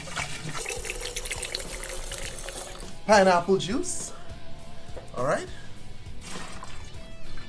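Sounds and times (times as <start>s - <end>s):
rum pouring into a cocktail: 0.0s - 3.0s, 6.2s - 7.0s
speech: 3.1s - 4.0s, 5.2s - 5.6s.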